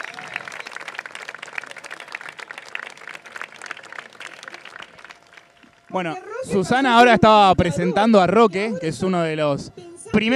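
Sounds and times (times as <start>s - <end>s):
audience applause at an anniversary celebration: 0.0s - 5.9s
speech: 5.9s - 10.3s.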